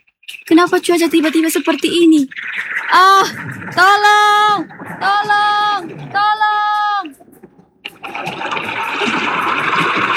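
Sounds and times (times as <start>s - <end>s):
speech: 0.5s - 6.5s
large waves crashing: 2.4s - 10.1s.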